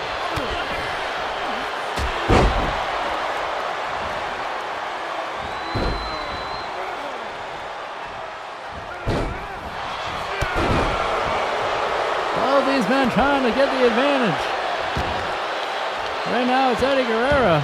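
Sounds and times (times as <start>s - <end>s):
crowd roaring at a wrestling match: 0.0s - 17.6s
wrestler's face slammed onto wrestling ring canvas: 2.0s - 2.9s, 9.0s - 9.5s
speech: 13.0s - 14.6s, 16.3s - 17.6s.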